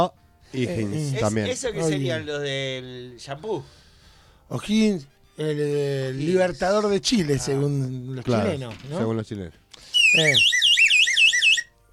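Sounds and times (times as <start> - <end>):
speech: 0.0 - 3.8, 4.5 - 10.6
electronic alarm blaring a high-pitched warbling tone: 9.9 - 11.7.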